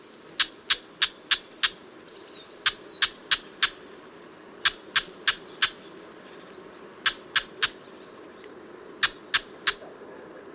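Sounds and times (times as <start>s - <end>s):
whinchat giving sharp dry chacking calls: 0.4s - 1.8s, 2.6s - 3.8s, 4.6s - 5.9s, 7.0s - 7.8s, 9.0s - 10.0s.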